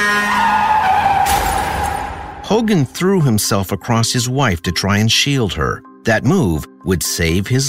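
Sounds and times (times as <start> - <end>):
car tire screech as a car skids on a foggy night: 0.0 - 2.4
speech: 2.5 - 7.6.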